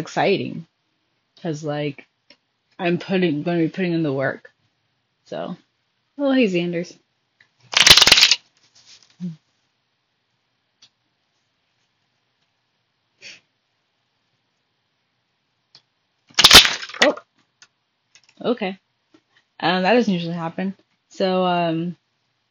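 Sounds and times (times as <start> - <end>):
speech: 0.0 - 0.7, 1.4 - 2.1, 2.8 - 4.5, 5.3 - 5.6, 6.2 - 7.0, 9.2 - 9.4, 18.4 - 18.8, 19.6 - 22.0
oracle cards being shuffled by hand: 7.7 - 8.4, 16.3 - 17.2.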